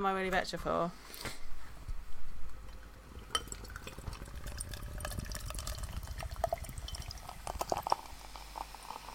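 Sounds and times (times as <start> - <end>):
speech: 0.0 - 1.4
fizzy crackling of carbonation bubbles in beer: 2.8 - 9.1
beer pouring into a craft beer glass: 3.0 - 9.1.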